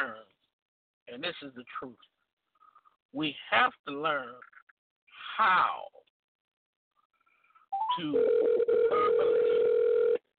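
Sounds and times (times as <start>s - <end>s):
speech: 1.2s - 2.2s, 3.1s - 4.6s, 5.3s - 6.0s, 7.9s - 9.7s
electronic telephone ringing tone on the line: 7.8s - 10.3s.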